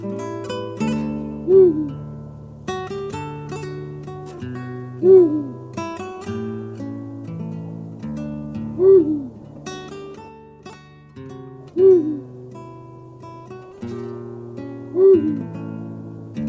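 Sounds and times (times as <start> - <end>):
Eurasian eagle-owl hooting: 0.9 - 2.1, 4.8 - 5.7, 8.6 - 10.3, 11.7 - 12.5, 14.8 - 15.6.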